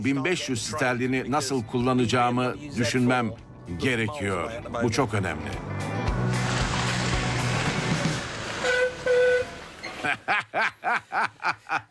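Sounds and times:
speech: 0:00.0 - 0:06.0, 0:10.2 - 0:11.8
broad rumbling vehicle noise: 0:02.6 - 0:10.0
horn honking: 0:07.5 - 0:10.0
laughter: 0:09.9 - 0:11.8.

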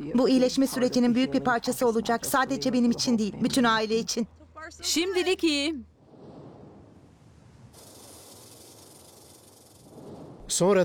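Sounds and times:
speech: 0:00.0 - 0:05.9, 0:10.5 - 0:10.8
Northern Pacific rattlesnake rattling: 0:07.7 - 0:10.4.

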